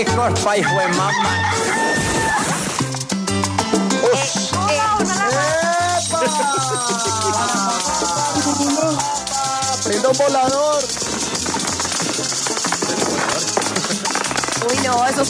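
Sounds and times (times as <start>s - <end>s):
speech: 0.0s - 2.6s, 9.9s - 11.1s, 14.6s - 15.2s
rhythmic music with a thumping bass line: 0.0s - 15.2s
rooster crowing: 0.6s - 2.7s, 6.3s - 9.8s
laughter: 4.0s - 10.6s, 13.0s - 14.5s.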